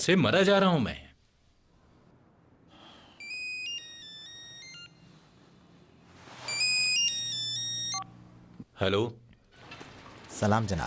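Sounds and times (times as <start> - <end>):
speech: 0.0 - 1.0, 8.8 - 9.2, 10.4 - 10.8
phone ringing with a bright electronic melody of stepped beeping tones: 3.2 - 5.3, 6.5 - 8.2.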